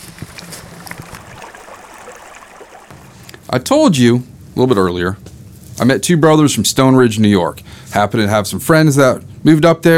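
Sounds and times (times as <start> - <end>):
river water flowing around a wading angler: 0.0 - 3.3
speech: 3.5 - 9.9.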